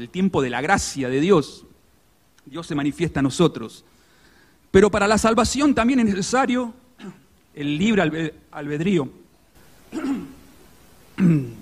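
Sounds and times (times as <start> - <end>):
speech: 0.0 - 1.7, 2.5 - 4.0, 4.7 - 9.2, 11.2 - 11.6
person clearing an irritated throat with coughs: 7.0 - 7.3, 9.9 - 10.5, 11.2 - 11.6.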